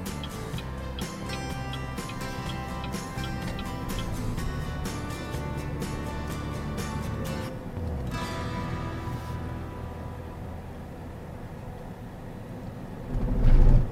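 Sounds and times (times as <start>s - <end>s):
light rapid ticking: 0.0s - 7.5s
small electric car accelerating with faint tire and road noise: 0.0s - 13.9s.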